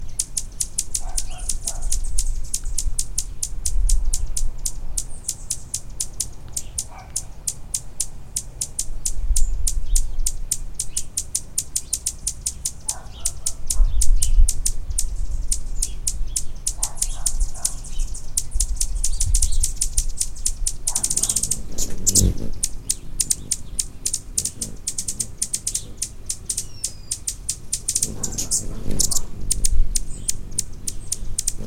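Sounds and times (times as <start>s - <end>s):
hummingbird: 0.0s - 31.6s.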